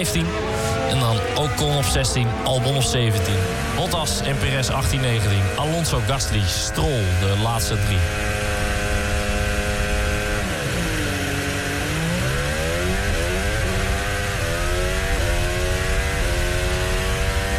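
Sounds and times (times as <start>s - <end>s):
speech: 0.0s - 8.4s
Formula 1 car engine revving at race start, heard onboard: 0.0s - 17.5s.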